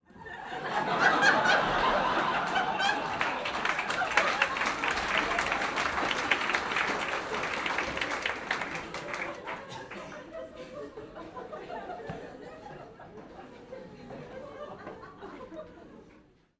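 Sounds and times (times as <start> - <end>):
comedy club audience of 200 people laughing: 0.1 - 16.3
light applause from comedy club audience: 1.3 - 10.4.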